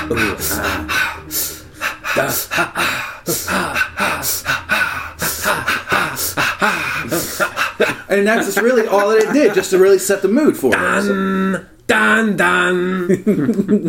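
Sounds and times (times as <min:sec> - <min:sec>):
rhythmic breathing with gasps from a film soundtrack: 0:00.0 - 0:08.1
speech: 0:00.1 - 0:01.5, 0:02.2 - 0:03.7, 0:08.1 - 0:13.8
laughter: 0:01.8 - 0:09.9, 0:13.0 - 0:13.8.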